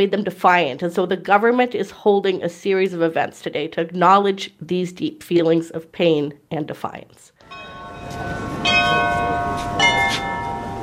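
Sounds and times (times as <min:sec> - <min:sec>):
speech: 0:00.0 - 0:09.7
cathedral church bells ringing: 0:07.4 - 0:10.8.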